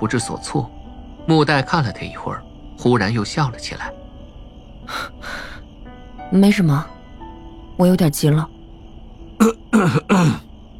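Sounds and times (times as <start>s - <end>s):
speech: 0.0s - 4.0s, 6.3s - 7.0s, 7.8s - 8.6s, 9.4s - 10.5s
rough throaty coughs: 9.4s - 10.5s.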